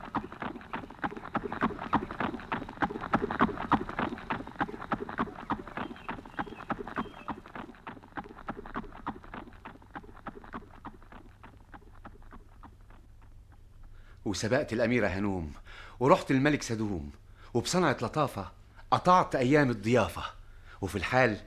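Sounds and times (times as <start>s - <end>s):
horse hooves clip-clopping at a gallop: 0.0s - 15.2s
speech: 14.3s - 21.4s.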